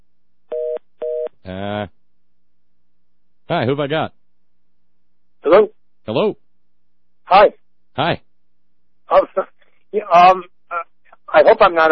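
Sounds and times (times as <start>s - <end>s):
electronic telephone beeps: 0.5s - 1.3s
speech: 3.5s - 4.2s, 5.5s - 6.4s, 7.3s - 8.3s, 9.1s - 10.8s, 11.4s - 11.8s.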